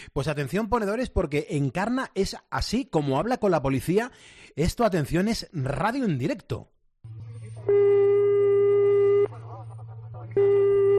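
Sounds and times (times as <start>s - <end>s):
speech: 0.0s - 7.9s
constant low hum: 7.0s - 10.9s
telephone ringback tone of an unanswered call: 7.6s - 9.3s, 10.4s - 10.9s.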